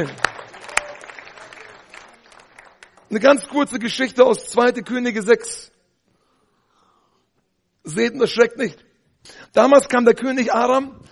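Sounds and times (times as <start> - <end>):
speech: 0.0 - 0.2, 3.1 - 5.8, 7.8 - 11.1
audience clapping: 0.0 - 3.6.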